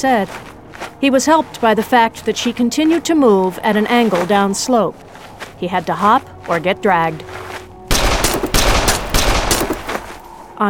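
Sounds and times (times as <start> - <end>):
speech: 0.0 - 7.4
loud gunfire: 7.9 - 10.2.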